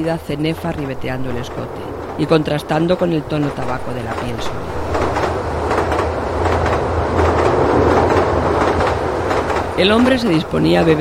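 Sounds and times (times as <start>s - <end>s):
speech: 0.0s - 5.0s, 9.8s - 10.9s
train wagons clattering on rails: 0.0s - 10.9s.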